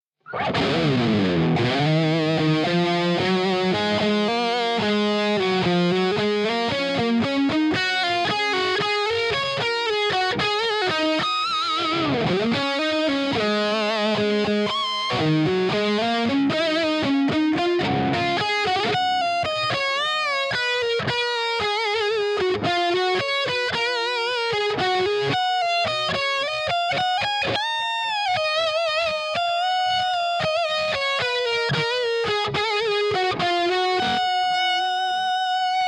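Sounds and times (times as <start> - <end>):
distorted electric guitars playing a bridge: 0.2 - 35.8.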